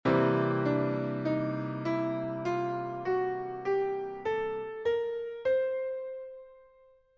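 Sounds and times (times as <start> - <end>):
blues piano: 0.0 - 6.8.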